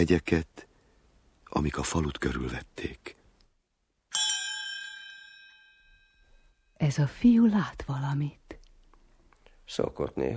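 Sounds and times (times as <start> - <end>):
speech: 0.0 - 0.7, 1.5 - 3.2, 6.8 - 8.4, 9.7 - 10.3
single bright bell strike ringing: 4.1 - 6.7.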